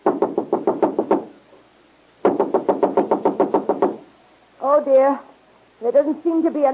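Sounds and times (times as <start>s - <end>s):
rapid sharp knocking on a door: 0.0s - 1.3s, 2.2s - 4.0s
speech: 4.8s - 6.7s.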